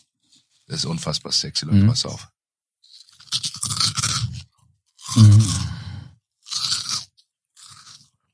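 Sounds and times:
speech: 0.7s - 2.4s
person biting and chewing crunchy food: 2.8s - 8.3s.

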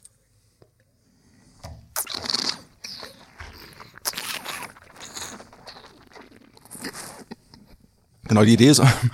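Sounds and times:
wine slurped while drawing in air: 2.0s - 7.9s
speech: 8.3s - 9.1s.

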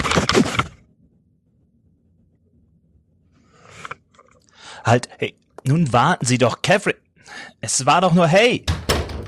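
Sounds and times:
speech: 4.8s - 8.9s
hotel room door slamming shut: 8.7s - 9.2s.

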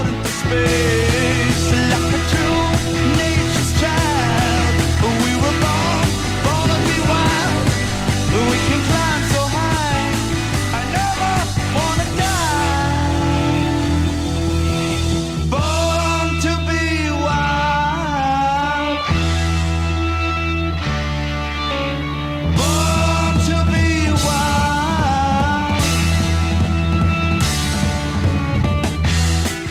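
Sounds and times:
pounding drums in a heavy metal song: 0.0s - 16.0s, 22.6s - 29.6s
soaring lead vocal in a heavy metal song: 0.0s - 19.4s, 21.5s - 27.1s
distorted guitars in a heavy metal song: 0.0s - 29.6s.

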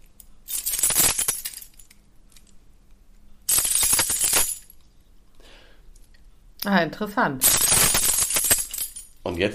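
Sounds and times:
bunch of keys jingled to imitate corn bunting song: 0.2s - 2.6s, 3.5s - 4.8s, 7.4s - 9.2s
speech: 6.6s - 7.6s, 9.3s - 9.5s.

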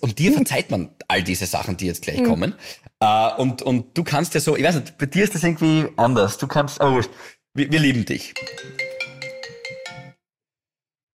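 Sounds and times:
speech: 0.0s - 8.9s
phone ringtone for an incoming call: 8.4s - 10.2s.

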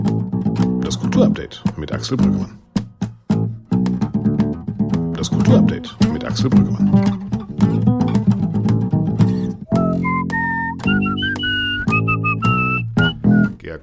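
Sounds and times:
plucked string accompaniment with steady low strums: 0.0s - 13.6s
speech: 1.2s - 2.6s, 5.2s - 7.2s
clear whistled melody with sustained gliding notes: 9.3s - 13.6s.

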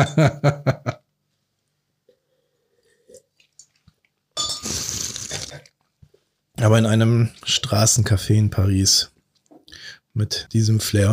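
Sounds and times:
speech: 0.0s - 1.0s, 6.6s - 9.1s, 10.2s - 11.1s
sipping: 2.3s - 5.8s
glasses of white wine clinking in a toast: 4.4s - 4.8s.

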